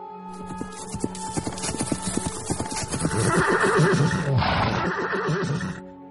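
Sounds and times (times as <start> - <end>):
hooves of two riders' horses clopping across desert sand: 0.3 - 5.8
horse whinnying: 1.6 - 5.8.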